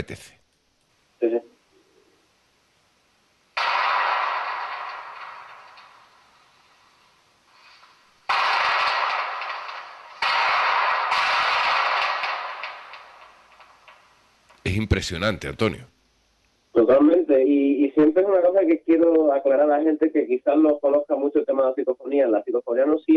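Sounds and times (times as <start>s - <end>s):
speech: 0.0s - 0.4s, 14.7s - 16.0s, 16.8s - 23.1s
sustained rapid gunfire in dense bursts: 3.6s - 6.2s, 8.2s - 14.1s
single gunshot echoing: 3.6s - 6.3s, 8.3s - 14.1s.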